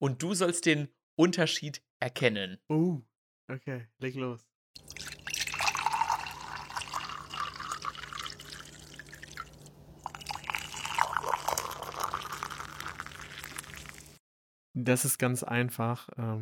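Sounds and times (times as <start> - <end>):
speech: 0.0 - 5.2, 14.8 - 16.4
cold then hot water poured into a cup to make tea: 4.8 - 14.2.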